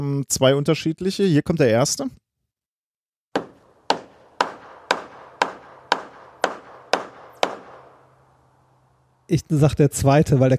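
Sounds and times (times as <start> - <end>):
speech: 0.0 - 2.2, 9.3 - 10.5
hammer blows: 3.4 - 9.3.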